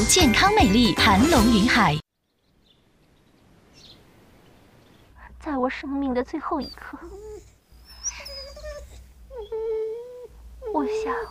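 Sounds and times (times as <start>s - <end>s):
speech: 0.1s - 2.0s, 5.4s - 7.5s, 10.7s - 11.2s
dog whimpering: 6.4s - 11.2s.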